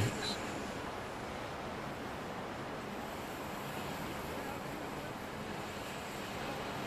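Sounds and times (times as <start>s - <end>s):
icy blizzard wind driving snow: 0.0s - 6.8s.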